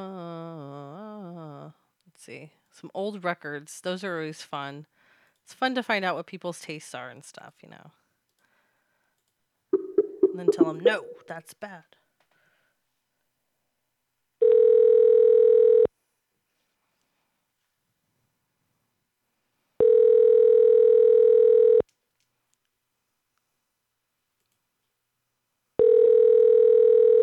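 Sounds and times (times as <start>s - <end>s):
speech: 2.2s - 4.9s, 5.5s - 8.0s, 10.4s - 12.0s
telephone ringback tone: 14.4s - 15.9s, 19.8s - 21.8s, 25.8s - 27.2s.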